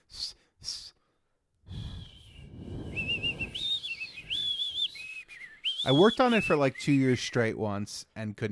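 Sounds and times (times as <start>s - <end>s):
puffs of air: 1.7s - 5.0s
person attempting to whistle, mostly breath: 1.7s - 7.2s
speech: 5.8s - 8.4s.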